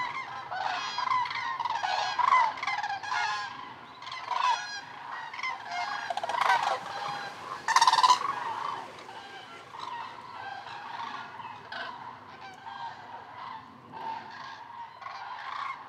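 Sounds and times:
common crane flock calling on migration stopover in eastern France: 0.0s - 15.8s.

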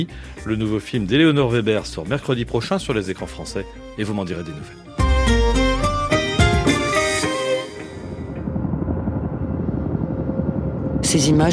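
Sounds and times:
speech: 0.0s - 5.4s, 11.1s - 11.5s
military helicopter rotor and engine: 6.2s - 11.5s.

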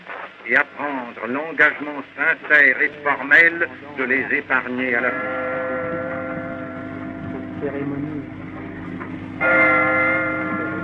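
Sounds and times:
speech: 0.4s - 5.6s, 7.6s - 8.3s, 9.4s - 9.9s
church bell tolling a death knell at a war commemoration: 4.4s - 10.8s.

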